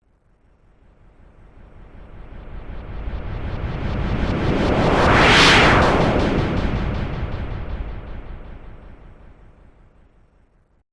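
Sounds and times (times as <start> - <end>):
long whoosh: 1.4 - 10.0.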